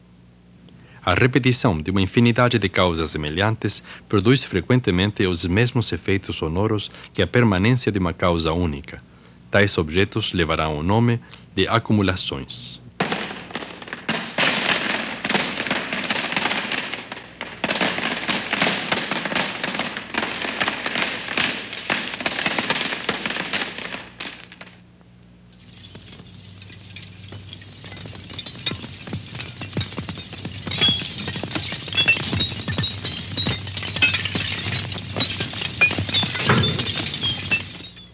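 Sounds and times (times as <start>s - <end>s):
speech: 1.0s - 12.8s
falling stones clattering: 13.0s - 24.8s, 25.5s - 38.1s
fire crackling and popping: 13.0s - 24.8s, 25.4s - 38.1s.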